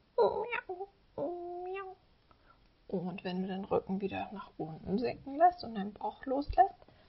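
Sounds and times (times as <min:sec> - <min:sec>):
person imitating cat meows in a yoga cat pose: 0:00.2 - 0:02.0
speech: 0:02.9 - 0:06.8.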